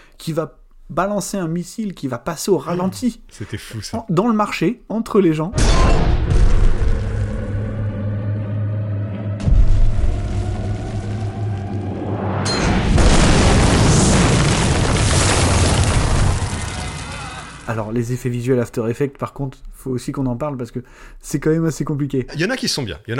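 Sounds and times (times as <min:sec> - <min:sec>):
speech: 0:00.2 - 0:06.5, 0:17.7 - 0:23.1
film explosions and booms: 0:05.6 - 0:17.8.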